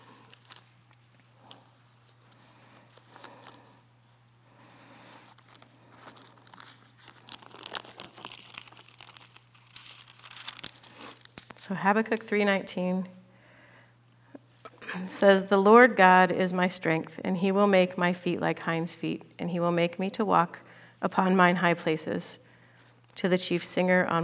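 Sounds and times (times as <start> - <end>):
paper pages rustling and shuffled while someone searches for a page: 0.0 - 3.7, 5.0 - 11.6
low steady hum: 0.0 - 24.2
speech: 11.7 - 13.2, 15.1 - 22.4, 23.2 - 24.2.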